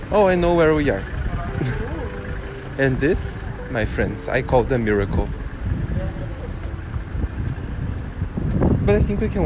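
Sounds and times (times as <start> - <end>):
speech: 0.1 - 1.2, 2.8 - 5.4, 8.9 - 9.4
wind buffeting microphone: 1.1 - 9.4.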